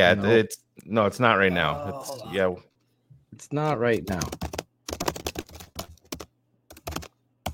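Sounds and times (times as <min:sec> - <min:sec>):
speech: 0:00.0 - 0:02.7, 0:03.3 - 0:04.5
typing on a computer keyboard: 0:04.1 - 0:07.5.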